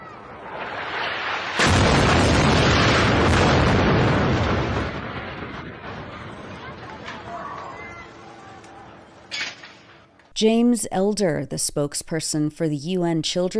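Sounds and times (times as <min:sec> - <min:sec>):
explosion of bombed residential tower: 0:00.0 - 0:08.1
debris noise from explosion: 0:00.0 - 0:10.3
speech: 0:10.4 - 0:13.5.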